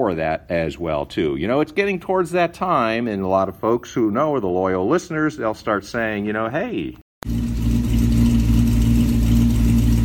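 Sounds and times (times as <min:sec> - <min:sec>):
speech: 0:00.0 - 0:07.4
1957 Buick Special car engine starting: 0:07.2 - 0:10.0.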